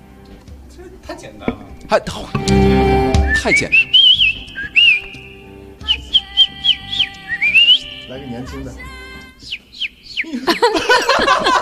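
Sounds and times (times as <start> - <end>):
speech: 0.3 - 3.9, 8.1 - 8.9
person imitating a young bird's chirp by mouth: 3.2 - 8.3
laughter: 10.2 - 11.5.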